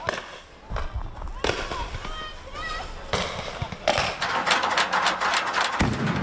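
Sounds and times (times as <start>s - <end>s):
firecrackers and rockets exploding at a riot: 0.0s - 6.2s
noisy crowd at a riot: 0.0s - 6.2s
people shouting: 1.2s - 3.7s.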